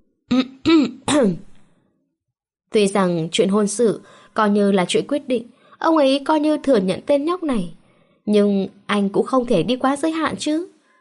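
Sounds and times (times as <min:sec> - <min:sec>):
dry throat-clearing coughs: 0:00.3 - 0:01.3
speech: 0:01.2 - 0:01.5, 0:02.8 - 0:10.7.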